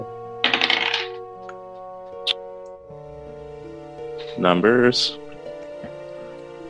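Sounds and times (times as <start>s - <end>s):
dice rattling across a table rolled for a perception check in a game: 0.5s - 1.2s
speech: 4.4s - 5.2s.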